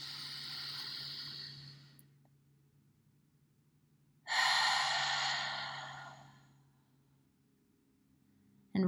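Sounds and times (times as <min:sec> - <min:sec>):
deep breathing during a relaxation exercise: 0:00.0 - 0:02.1, 0:04.3 - 0:06.9
faint low hum: 0:00.0 - 0:08.8.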